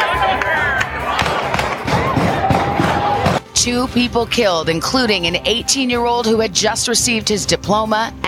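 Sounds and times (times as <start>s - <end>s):
loud agitated crowd shouting: 0.0s - 3.4s
burst of gunfire: 1.1s - 3.4s
speech: 3.6s - 8.2s.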